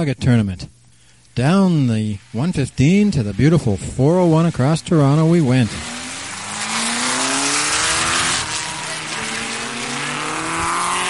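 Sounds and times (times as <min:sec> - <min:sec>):
speech: 0:00.0 - 0:00.8, 0:01.4 - 0:05.9
car engine picking up speed: 0:02.8 - 0:11.0
road roar of a car moving along a highway: 0:04.8 - 0:11.0.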